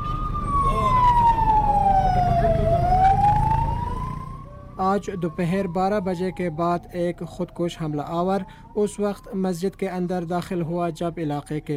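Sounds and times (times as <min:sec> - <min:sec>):
ambulance siren wailing: 0:00.0 - 0:11.7
rumble of street traffic: 0:00.0 - 0:11.7
speech: 0:04.9 - 0:11.7.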